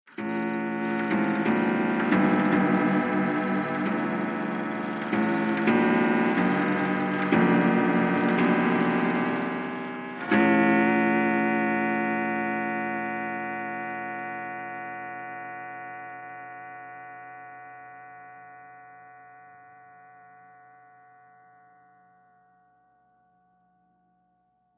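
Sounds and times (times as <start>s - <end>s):
weird clock bell striking: 0.2s - 18.3s.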